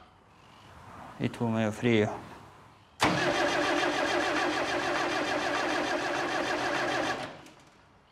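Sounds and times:
speech: 1.2 - 2.3
car engine cranking but failing to start: 3.0 - 7.4.

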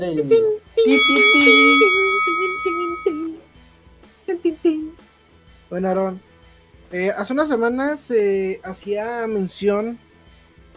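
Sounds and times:
speech: 0.0 - 2.0, 5.7 - 6.3, 6.9 - 10.0
wrestling ring bell clanging: 0.9 - 3.4.

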